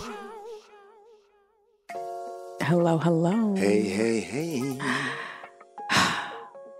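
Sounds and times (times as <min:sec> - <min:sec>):
speech: 0:02.8 - 0:05.2
loud exaggerated theatrical gasping breath: 0:04.8 - 0:06.5.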